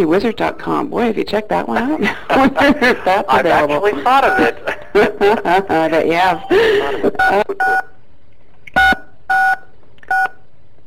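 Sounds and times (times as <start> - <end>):
speech: 0.0 - 7.9
laughter: 1.8 - 7.4
short two-pitched electronic tone beeps as callers join a conference call: 8.8 - 10.4.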